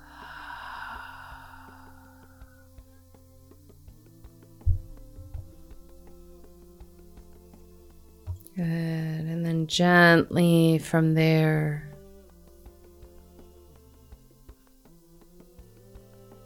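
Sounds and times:
slow exhale of breath during a guided breathing exercise: 0:00.0 - 0:02.7
speech: 0:08.6 - 0:08.9, 0:09.7 - 0:11.9.

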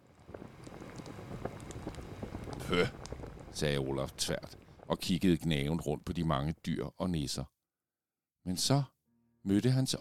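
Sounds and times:
large pot of milk bubbling over a bonfire: 0:00.0 - 0:06.1
bonfire crackling: 0:00.0 - 0:06.5
speech: 0:02.7 - 0:03.0, 0:03.6 - 0:07.6, 0:08.4 - 0:09.9.

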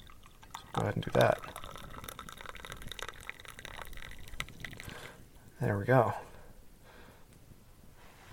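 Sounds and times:
hot water pouring from a samovar tap into a cup: 0:00.0 - 0:05.4
speech: 0:00.8 - 0:01.6, 0:05.6 - 0:06.3.

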